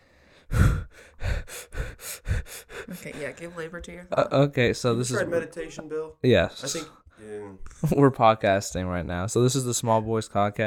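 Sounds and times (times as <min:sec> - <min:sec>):
deep breaths: 0:00.0 - 0:03.5
speech: 0:03.0 - 0:10.6.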